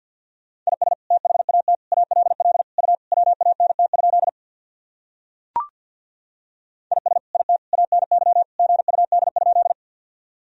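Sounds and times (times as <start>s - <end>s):
Morse code beeps at a single mid-pitched tone: 0.7s - 4.3s, 6.9s - 9.8s.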